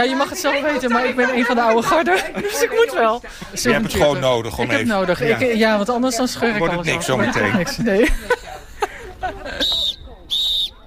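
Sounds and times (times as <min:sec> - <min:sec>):
laughter: 0:00.0 - 0:05.0, 0:06.8 - 0:10.0
speech: 0:00.0 - 0:08.4
high-pitched whistle blasts at a korfball tournament in Apeldoorn: 0:09.6 - 0:10.8.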